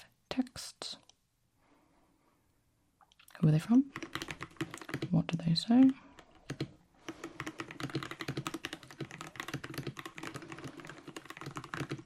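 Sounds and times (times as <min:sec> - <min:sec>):
speech: 0:00.4 - 0:00.8, 0:03.4 - 0:04.1, 0:05.1 - 0:06.0
therapist typing in shorthand on a keyboard: 0:03.9 - 0:12.0.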